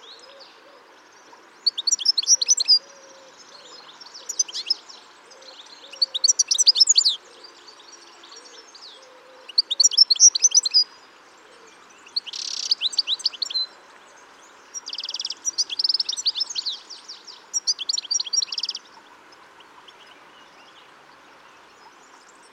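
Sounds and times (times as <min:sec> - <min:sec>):
European goldfinch twittering: 0:04.3 - 0:04.8, 0:05.9 - 0:07.2, 0:09.5 - 0:10.8, 0:12.1 - 0:13.6, 0:14.8 - 0:18.8.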